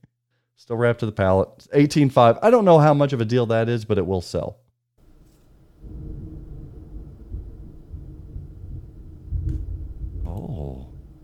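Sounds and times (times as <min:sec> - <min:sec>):
speech: 0:00.6 - 0:04.6
long low rolling thunder: 0:05.0 - 0:11.2.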